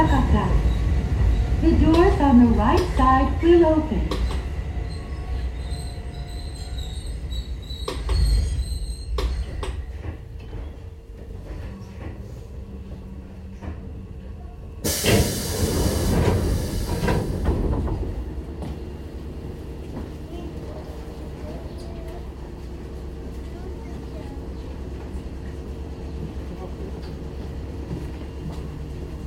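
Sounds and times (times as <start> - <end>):
train pulling into a station rumbling: 0.0 - 29.2
speech: 1.7 - 4.2
train wheels squealing: 4.3 - 10.8
loud burst of hissing air as the train stops: 14.8 - 17.7.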